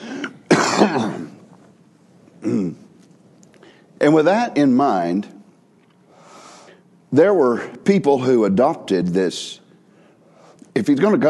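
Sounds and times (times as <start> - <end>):
person coughing: 0.0 - 1.4, 2.4 - 2.9
person clearing throat: 0.1 - 1.4, 2.4 - 2.9
speech: 0.8 - 1.3, 2.4 - 2.8, 4.0 - 5.4, 7.1 - 9.6, 10.8 - 11.2.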